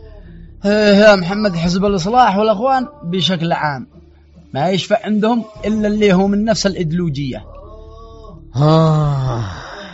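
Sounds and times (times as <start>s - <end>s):
speech: 0.6s - 3.9s, 4.5s - 7.5s, 8.5s - 9.6s
man crying out and groaning in pain: 8.6s - 9.9s.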